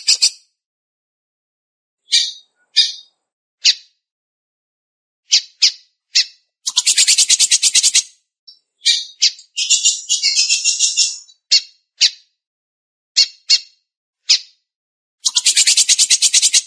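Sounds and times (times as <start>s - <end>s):
Belgian canary song with chips, buzzy rattle and trill: 0.0s - 0.6s, 2.0s - 4.0s, 5.3s - 12.4s, 13.2s - 14.6s, 15.2s - 16.6s.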